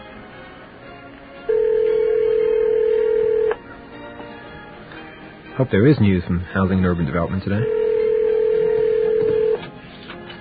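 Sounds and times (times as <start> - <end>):
telephone line ringing with a steady electronic tone: 1.5 - 3.6, 7.6 - 9.6
speech: 5.6 - 7.8.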